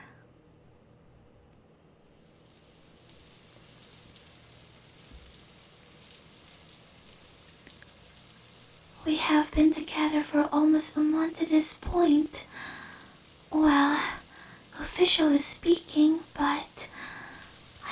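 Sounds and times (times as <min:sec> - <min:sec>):
shower spray of falling water: 0:02.1 - 0:17.9
speech: 0:09.1 - 0:12.5, 0:15.0 - 0:16.9.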